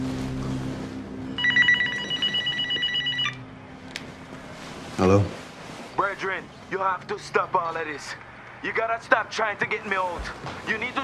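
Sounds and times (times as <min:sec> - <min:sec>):
low hum: 0:00.0 - 0:11.0
telephone ringing with trilling electronic bell: 0:01.4 - 0:03.5
speech: 0:05.0 - 0:05.4, 0:06.2 - 0:11.0.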